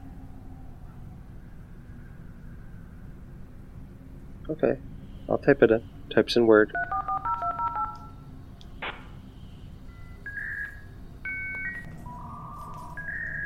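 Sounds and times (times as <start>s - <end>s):
speech: 4.5s - 7.1s
56K dial-up modem touch-tone dialing beeps: 6.7s - 8.2s, 9.9s - 11.9s
56K dial-up modem handshake tones: 6.8s - 8.1s.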